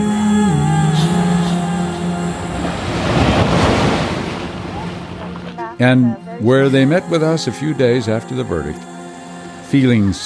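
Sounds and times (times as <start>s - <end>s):
ocean surf breaking on a surf beach at White Plains: 1.0s - 7.5s
wind buffeting at a surf beach: 2.3s - 5.6s
speech: 5.8s - 8.9s, 9.7s - 10.2s.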